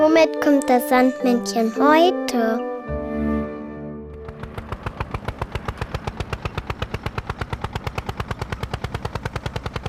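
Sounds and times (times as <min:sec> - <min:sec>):
speech: 0:00.2 - 0:02.7
tractor engine chugging: 0:04.1 - 0:09.8.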